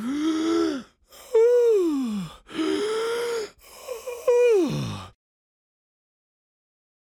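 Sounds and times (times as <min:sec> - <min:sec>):
person gasping while holding a pig: 0:00.0 - 0:05.2.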